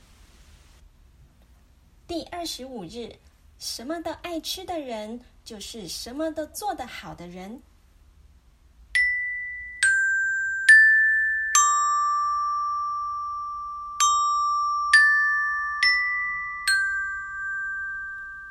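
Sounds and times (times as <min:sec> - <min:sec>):
speech: 0:02.1 - 0:07.7
school bell chime melody of struck notes: 0:09.0 - 0:18.4.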